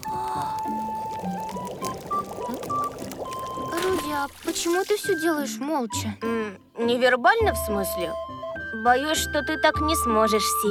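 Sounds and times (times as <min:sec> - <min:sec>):
hot water pouring in a steady bubbling stream: 0:00.0 - 0:05.4
speech: 0:04.2 - 0:10.7.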